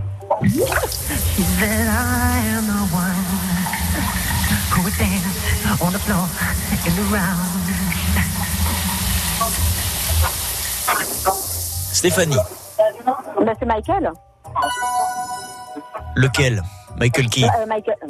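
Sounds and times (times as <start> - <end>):
speech: 0.3 - 3.5, 4.7 - 8.4, 9.5 - 14.9, 16.2 - 18.0
running shower water in a bathroom: 0.4 - 13.0
man singing under the shower: 1.0 - 8.6.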